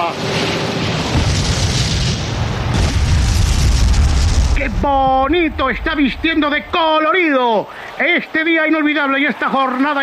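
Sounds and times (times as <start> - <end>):
continuous barrage of fireworks exploding: 1.0 - 7.0
wash of noise: 2.2 - 10.0
speech: 4.8 - 10.0.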